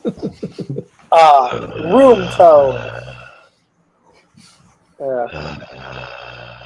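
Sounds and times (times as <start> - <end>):
speech: 0.0 - 0.5, 1.1 - 3.1, 5.0 - 6.1
laughter: 0.0 - 2.8
steady hiss of open microphones: 0.0 - 3.3, 4.1 - 6.6
loud rough breathy snort: 1.5 - 3.4, 5.3 - 6.6.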